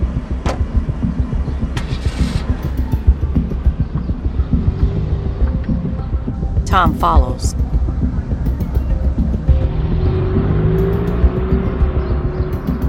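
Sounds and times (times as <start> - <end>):
silver sedan engine starting and running with a low pulsing rumble: 0.0 - 12.8
speech: 6.8 - 7.6.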